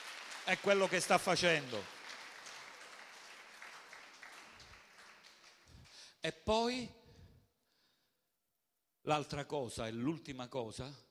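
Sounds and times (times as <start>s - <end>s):
audience applause: 0.0s - 6.0s
speech: 0.5s - 2.0s, 6.2s - 7.0s, 9.0s - 11.0s.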